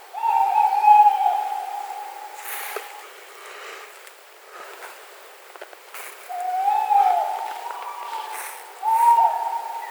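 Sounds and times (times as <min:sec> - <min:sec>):
Strix aluco hooting: 0:00.0 - 0:03.0, 0:06.3 - 0:09.8.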